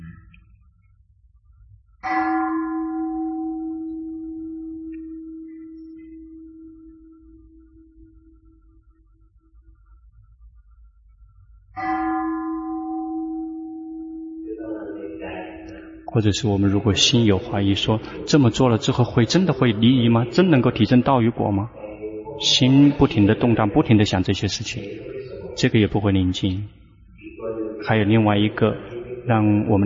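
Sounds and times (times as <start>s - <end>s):
speech: 2.0s - 2.2s, 16.2s - 21.8s, 22.4s - 26.8s, 27.8s - 29.8s
deep meditation bell struck: 2.0s - 8.8s, 11.8s - 27.9s.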